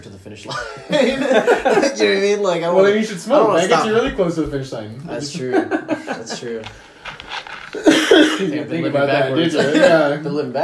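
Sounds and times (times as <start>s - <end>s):
speech: 0.0s - 6.9s, 7.7s - 10.6s
laughter: 0.5s - 2.2s, 5.2s - 7.0s, 7.7s - 8.5s, 9.4s - 10.2s
person coughing: 7.8s - 8.5s.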